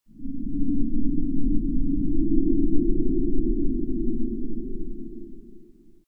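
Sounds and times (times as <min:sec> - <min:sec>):
wind in a hallway: 0:00.0 - 0:06.0.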